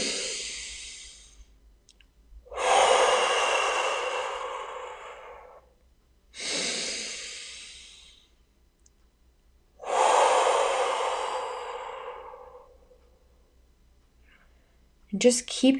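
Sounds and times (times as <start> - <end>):
deep breathing in through the nose and out through the mouth during a guided breathing exercise: 0.0 - 1.6, 2.4 - 8.5, 9.7 - 13.5.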